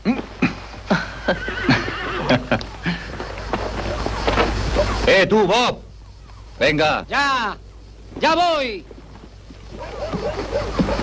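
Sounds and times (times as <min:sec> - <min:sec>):
faint horse hoof clops: 0:00.0 - 0:05.0, 0:08.0 - 0:11.0
horse neighing and whinnying: 0:00.4 - 0:03.2
speech: 0:05.2 - 0:05.8, 0:06.6 - 0:07.6, 0:08.2 - 0:08.9.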